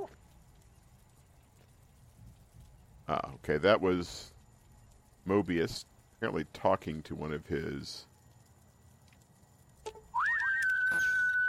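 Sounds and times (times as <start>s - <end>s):
speech: 3.1s - 4.3s, 5.2s - 8.1s
person whistling as if calling someone: 10.2s - 11.4s.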